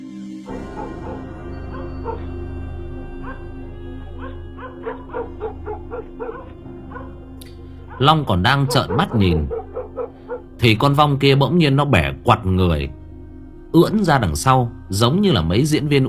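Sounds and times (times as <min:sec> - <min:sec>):
steady low drone: 0:00.4 - 0:16.0
dogs from several houses barking at night toward a stream: 0:00.5 - 0:10.8
speech: 0:08.0 - 0:09.6, 0:10.6 - 0:13.0, 0:13.7 - 0:16.0.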